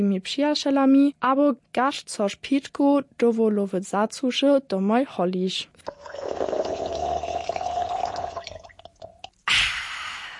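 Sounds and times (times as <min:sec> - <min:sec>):
speech: 0:00.0 - 0:06.5
non-alcoholic mixed drink being stirred: 0:05.9 - 0:09.3.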